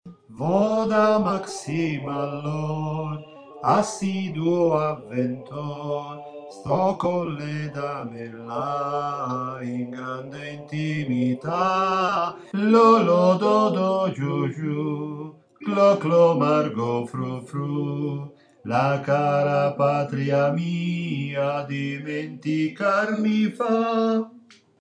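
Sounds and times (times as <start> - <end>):
alto voices singing operetta: 0.1 - 24.5.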